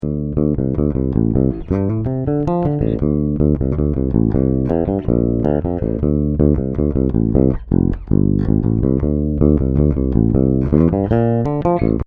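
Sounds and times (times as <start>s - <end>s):
Ibanez ARTB100 bass guitar with SSB bridge: 0.0s - 12.0s.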